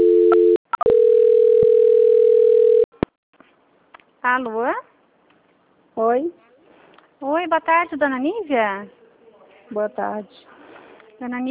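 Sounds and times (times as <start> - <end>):
telephone line tone during a call transfer: 0.0 - 2.9
speech: 4.2 - 4.9, 6.0 - 6.4, 7.2 - 9.0, 9.7 - 10.5, 11.2 - 11.4.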